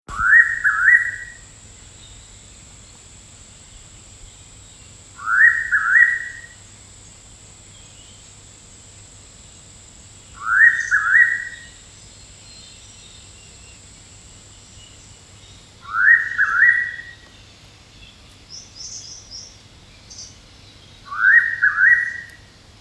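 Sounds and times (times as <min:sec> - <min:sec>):
Noisy Pitta Pitta versicolor calling: 0:00.1 - 0:01.5, 0:05.2 - 0:06.6, 0:10.4 - 0:11.8, 0:15.8 - 0:17.4, 0:21.0 - 0:22.5.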